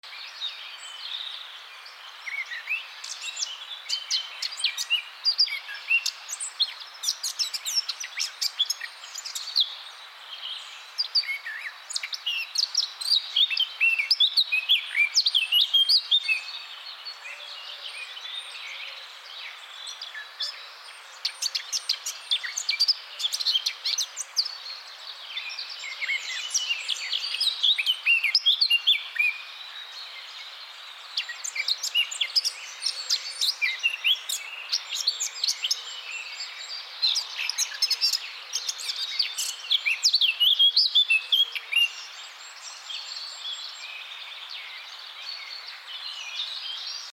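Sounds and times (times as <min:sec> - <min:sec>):
blackcap singing: 0:00.0 - 0:47.1.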